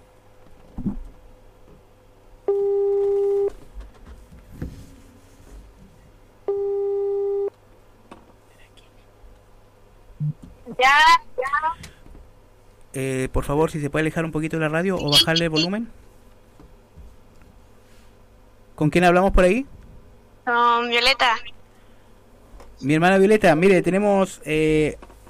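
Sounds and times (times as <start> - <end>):
faint low hum: 0.0 - 25.2
telephone line tone while a call is being placed: 2.5 - 3.6, 6.5 - 7.5
speech: 13.0 - 16.0, 18.8 - 19.8, 20.5 - 21.4, 22.8 - 25.1.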